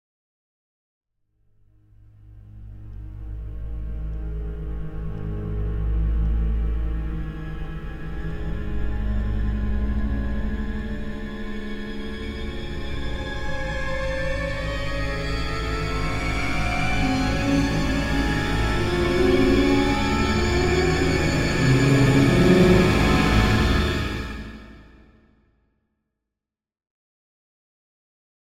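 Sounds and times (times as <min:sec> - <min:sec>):
long pad: 0:02.5 - 0:25.1
symphonic hit: 0:15.2 - 0:25.0.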